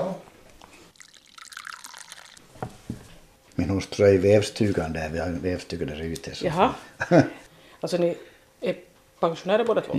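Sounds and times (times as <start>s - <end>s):
coffee pouring into a cup: 0.6s - 3.1s
cup clinking: 1.0s - 3.1s
speech: 3.7s - 9.9s
laughter: 7.0s - 7.4s.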